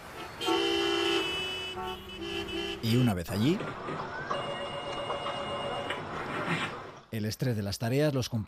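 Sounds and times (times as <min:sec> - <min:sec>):
car horns honking in a traffic jam: 0:00.0 - 0:03.5, 0:04.3 - 0:06.3
low rumble of idling traffic: 0:00.0 - 0:07.1
speech: 0:02.8 - 0:04.3, 0:07.2 - 0:08.4.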